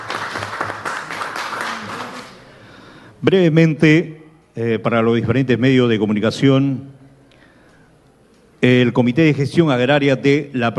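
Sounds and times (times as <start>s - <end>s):
crowd applauding at an agricultural fair event: 0.0s - 2.7s
speech: 3.2s - 7.0s, 8.6s - 10.7s.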